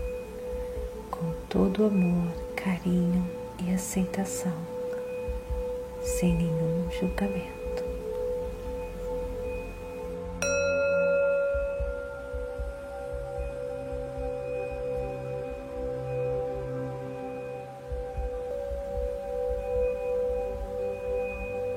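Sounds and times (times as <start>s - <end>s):
speech: 1.5s - 4.8s, 6.0s - 7.6s
meditation bell struck and ringing: 4.9s - 21.7s.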